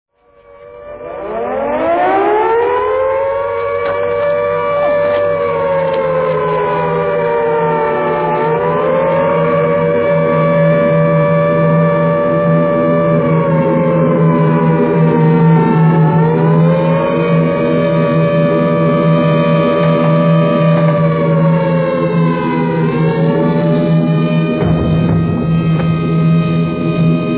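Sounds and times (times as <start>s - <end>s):
air raid siren: 0.1s - 27.3s.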